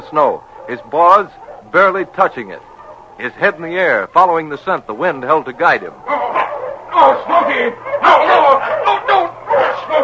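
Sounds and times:
sled dog team barking, yelping and whining frantically: 0.1 - 4.1, 5.6 - 10.0
speech: 0.1 - 6.2, 6.9 - 9.0.

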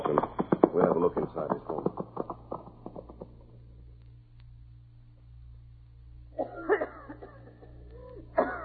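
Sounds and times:
low steady hum: 0.0 - 8.6
speech: 1.0 - 1.9
woman coughing: 6.4 - 8.6.

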